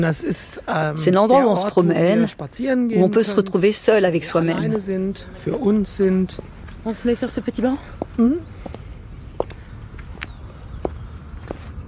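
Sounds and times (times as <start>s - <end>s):
speech: 0.0s - 8.8s
birds singing in an open garden: 0.0s - 11.8s
sharp bird calls and clicks: 6.3s - 11.8s.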